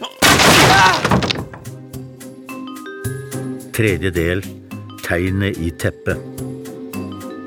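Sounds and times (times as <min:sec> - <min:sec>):
debris clattering and thudding as it settles: 0:00.2 - 0:01.8
wooden chair being smashed: 0:00.2 - 0:01.8
speech: 0:03.8 - 0:06.5.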